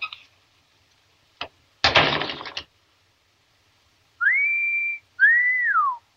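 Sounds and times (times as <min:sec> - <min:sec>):
sustained lip whistles: 0:04.2 - 0:06.0.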